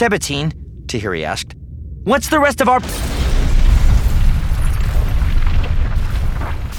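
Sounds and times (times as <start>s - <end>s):
speech: 0.0s - 3.1s
explosion blowing in a metal hatch with deep rumbling boom: 2.8s - 6.7s.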